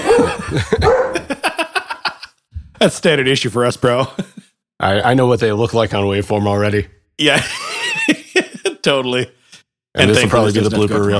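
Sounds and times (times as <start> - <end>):
dog barking and yapping: 0.0 - 1.3
laughter: 0.0 - 2.4, 4.0 - 4.5, 7.2 - 8.9
speech: 0.2 - 1.0, 2.8 - 7.6, 8.8 - 9.4, 10.0 - 11.1.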